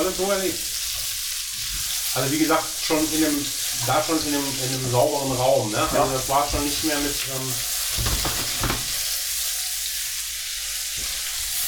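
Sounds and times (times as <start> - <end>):
food sizzling in a hot pan: 0.0 - 11.6
speech: 0.1 - 0.8, 2.1 - 8.3
scraping and clattering as food is stirred: 8.0 - 9.1.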